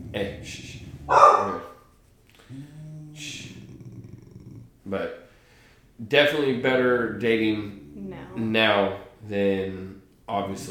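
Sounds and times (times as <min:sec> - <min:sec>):
dog whining: 0:00.0 - 0:01.8, 0:02.5 - 0:04.7
speech: 0:00.1 - 0:01.7, 0:04.9 - 0:05.2, 0:06.0 - 0:10.6
dog barking: 0:01.0 - 0:01.8.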